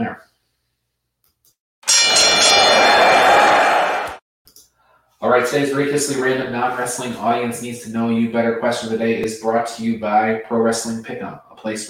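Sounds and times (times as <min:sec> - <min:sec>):
speech: 0:00.0 - 0:00.3, 0:05.2 - 0:11.8
loud bright metallic bell ringing: 0:01.8 - 0:03.8.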